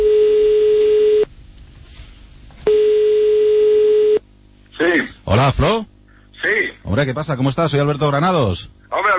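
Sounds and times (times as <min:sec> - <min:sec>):
telephone ringing tone electronic buzz: 0:00.0 - 0:01.3, 0:02.6 - 0:04.2
speech: 0:05.4 - 0:09.0.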